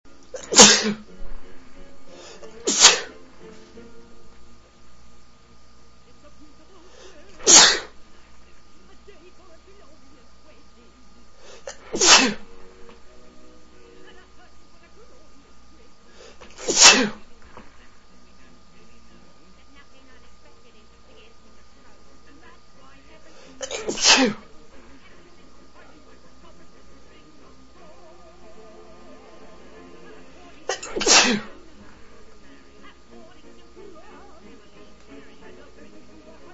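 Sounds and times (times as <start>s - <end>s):
music: 0.1s - 7.1s, 8.8s - 36.5s
man sneezing: 0.4s - 1.1s, 2.6s - 3.2s, 7.4s - 8.0s, 11.5s - 12.5s, 16.6s - 17.2s, 23.6s - 24.5s, 30.7s - 31.6s.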